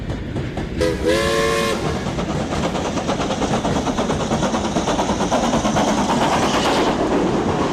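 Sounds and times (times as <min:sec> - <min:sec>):
steam train chugging: 0:00.0 - 0:07.7
steam train whistle: 0:00.8 - 0:02.0.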